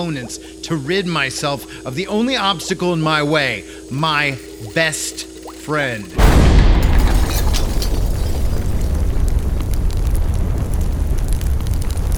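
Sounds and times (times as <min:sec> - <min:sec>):
speech: 0:00.0 - 0:06.8
deep rumbling and crackling roar: 0:03.8 - 0:12.1
loud explosion: 0:06.1 - 0:11.2.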